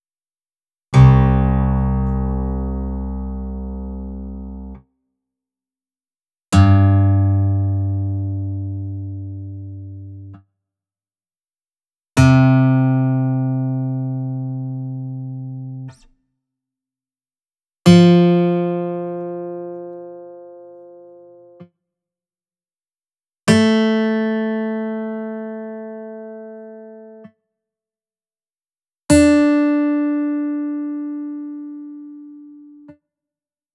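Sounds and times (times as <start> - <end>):
guitar in Drop C tuning: 0.9 - 4.8, 6.5 - 10.4, 12.2 - 16.1, 17.9 - 21.6, 23.5 - 27.3, 29.1 - 32.9.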